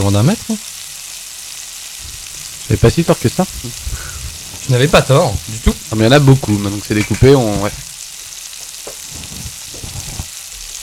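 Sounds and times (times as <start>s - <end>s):
speech: 0.0s - 0.8s, 2.7s - 4.1s, 4.7s - 7.9s
food frying in pans with a little fat: 0.0s - 10.8s
soft stirring and scraping in pans: 2.0s - 7.8s, 8.6s - 10.3s.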